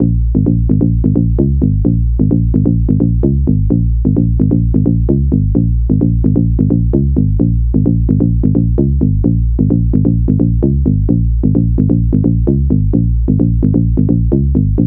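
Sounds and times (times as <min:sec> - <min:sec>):
bass: 0:00.0 - 0:14.8.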